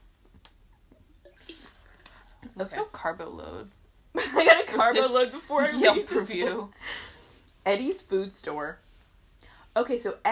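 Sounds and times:
person drinking water: 0:00.9 - 0:02.5
speech: 0:02.6 - 0:08.8, 0:09.8 - 0:10.2.

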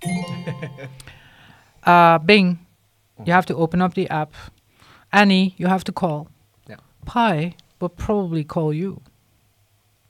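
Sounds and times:
two-tone ding-dong doorbell chime: 0:00.0 - 0:01.4
speech: 0:01.8 - 0:02.6, 0:03.2 - 0:09.1.

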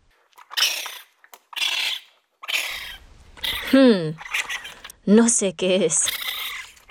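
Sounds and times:
baby raccoon raspy high-pitched chittering calls: 0:00.3 - 0:05.0, 0:05.9 - 0:06.9
speech: 0:03.7 - 0:04.3, 0:05.0 - 0:06.2.

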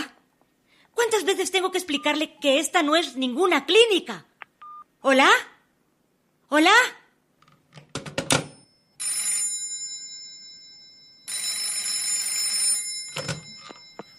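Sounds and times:
speech: 0:01.0 - 0:04.3, 0:05.0 - 0:05.5, 0:06.5 - 0:07.0
old-style telephone bell ringing: 0:08.5 - 0:14.1.

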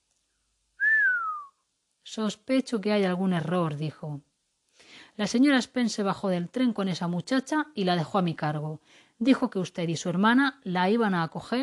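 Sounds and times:
man whistling a sliding note: 0:00.8 - 0:01.6
speech: 0:02.1 - 0:04.3, 0:05.2 - 0:11.6.

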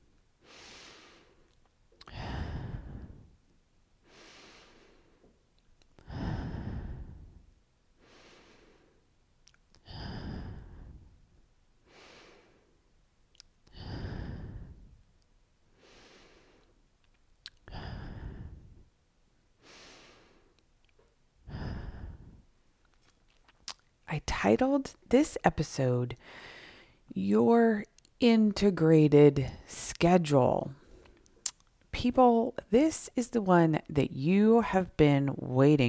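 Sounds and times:
deep breaths in through the nose and out through the mouth: 0:00.4 - 0:03.4, 0:04.0 - 0:05.4, 0:06.0 - 0:09.1, 0:09.8 - 0:12.8, 0:13.7 - 0:15.0, 0:15.7 - 0:16.8, 0:17.6 - 0:18.9, 0:19.6 - 0:20.6, 0:21.4 - 0:22.6, 0:26.2 - 0:27.1
speech: 0:24.2 - 0:26.5, 0:27.1 - 0:30.8, 0:32.0 - 0:35.8.

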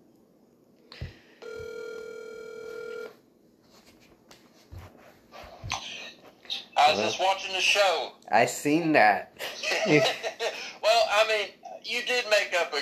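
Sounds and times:
electronic telephone ring tone of a call going out: 0:01.4 - 0:03.2
speech: 0:06.9 - 0:10.3, 0:11.1 - 0:12.8
laughter: 0:09.4 - 0:10.8.

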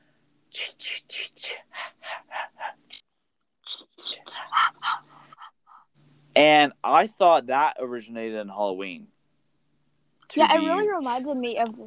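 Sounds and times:
voice imitating whispered breathy horror chase breathing effect: 0:00.5 - 0:03.0, 0:03.7 - 0:05.5
speech: 0:06.4 - 0:09.2, 0:10.3 - 0:11.8.

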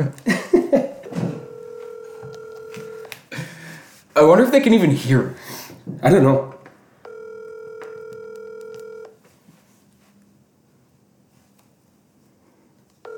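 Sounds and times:
speech: 0:00.0 - 0:00.3, 0:04.2 - 0:06.6
outgoing telephone call ringback tone: 0:01.0 - 0:03.1, 0:07.0 - 0:09.2.

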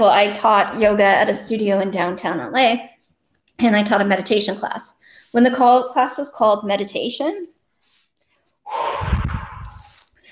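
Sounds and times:
speech: 0:00.0 - 0:02.9, 0:03.6 - 0:07.5
voice imitating wind blowing tumbleweeds with a breathy whooshing exhale: 0:08.7 - 0:10.0.

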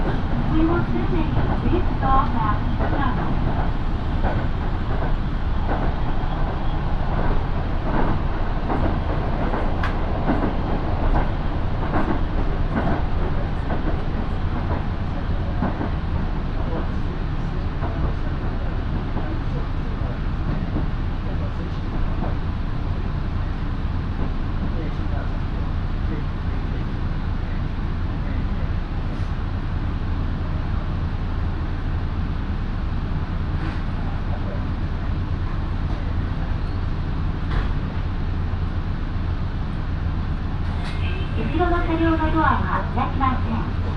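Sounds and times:
sharp rail-joint clicks: 0:00.0 - 0:19.8, 0:20.4 - 0:23.2, 0:35.7 - 0:41.8
local train on the Minobu Line rumbling on rails, heard onboard: 0:00.0 - 0:43.9
speech: 0:00.6 - 0:06.4.

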